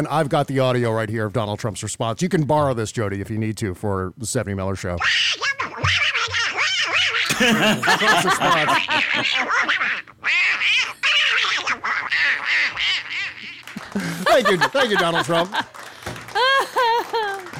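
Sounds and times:
speech: 0:00.0 - 0:06.0, 0:07.4 - 0:09.9, 0:14.0 - 0:15.8
raspy cartoon duck voice quacking gibberish: 0:05.0 - 0:07.3, 0:08.4 - 0:13.6
laughter: 0:07.3 - 0:10.0, 0:13.4 - 0:17.5.

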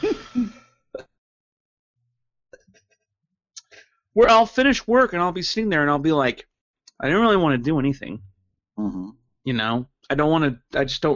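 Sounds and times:
person clearing throat: 0:00.0 - 0:01.1
person coughing: 0:00.0 - 0:01.1
speech: 0:04.2 - 0:11.1.

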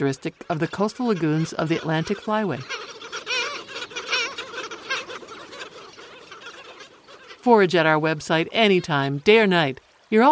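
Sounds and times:
speech: 0:00.0 - 0:02.9, 0:07.4 - 0:10.3
Black Skimmer in flight giving short nasal barking calls at a wildlife refuge in Virginia, USA: 0:00.0 - 0:07.7.

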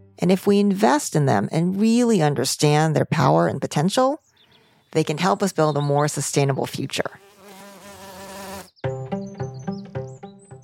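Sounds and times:
speech: 0:00.2 - 0:04.3, 0:04.9 - 0:07.2
honeybees buzzing: 0:07.1 - 0:08.7.

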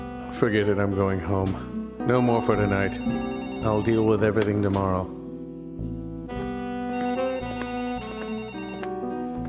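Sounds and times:
speech: 0:00.4 - 0:05.2
telephone ringing with a bright melodic electronic ringtone: 0:02.4 - 0:04.5, 0:06.9 - 0:09.3.

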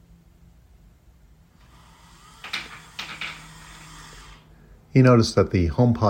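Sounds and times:
small motor of smart window blinds closing: 0:01.6 - 0:04.5
smart window blinds knocking and rattling as they move: 0:02.4 - 0:03.5
speech: 0:05.0 - 0:06.0.

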